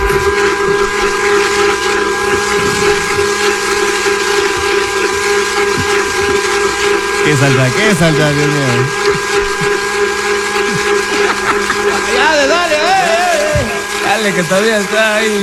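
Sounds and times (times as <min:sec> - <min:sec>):
electric blender running: 0:00.0 - 0:15.4
speech: 0:07.4 - 0:09.3, 0:14.2 - 0:15.4
laughter: 0:10.5 - 0:13.9.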